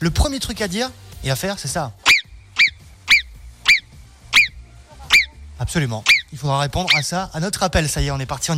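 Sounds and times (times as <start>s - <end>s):
speech: 0.0s - 2.1s, 5.7s - 8.5s
imitated marmot whistles: 2.0s - 5.4s, 6.0s - 7.1s.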